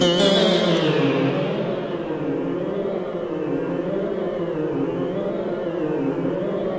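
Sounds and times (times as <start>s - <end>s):
warping guitar: 0.0s - 6.6s.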